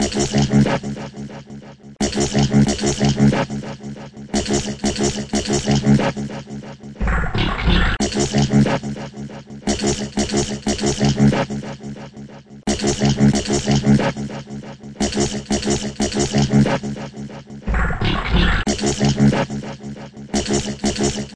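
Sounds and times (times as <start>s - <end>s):
electronic synth: 2.0s - 12.0s, 12.7s - 21.3s.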